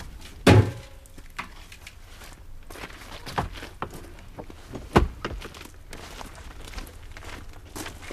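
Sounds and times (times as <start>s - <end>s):
small bucket clanking as it is handled: 0.5s - 1.0s.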